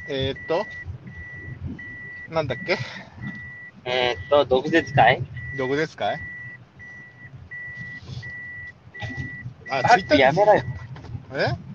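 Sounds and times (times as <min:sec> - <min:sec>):
vehicle reversing alarm beeping: 0:00.0 - 0:10.9
low rumble of vehicle engine: 0:00.0 - 0:11.7
speech: 0:00.1 - 0:01.2, 0:02.3 - 0:03.1, 0:03.8 - 0:06.3, 0:09.7 - 0:10.7, 0:11.3 - 0:11.6.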